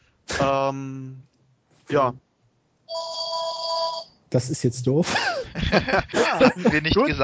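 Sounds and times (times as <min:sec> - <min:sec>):
speech: 0:00.4 - 0:01.3, 0:01.9 - 0:02.2, 0:04.3 - 0:07.2
phone ringing with a steady electronic tone: 0:02.9 - 0:04.2
laughter: 0:05.0 - 0:07.2.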